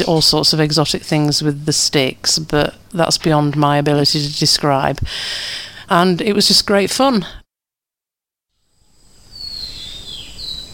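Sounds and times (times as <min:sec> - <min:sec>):
speech: 0:00.0 - 0:07.4
steady ambient hiss: 0:00.0 - 0:07.4, 0:08.6 - 0:10.7
morning birdsong in a national park: 0:08.8 - 0:10.7.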